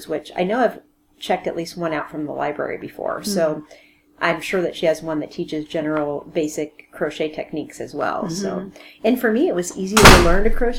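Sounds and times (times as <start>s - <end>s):
speech: 0.0s - 10.7s
door slammed shut by wind: 10.0s - 10.7s.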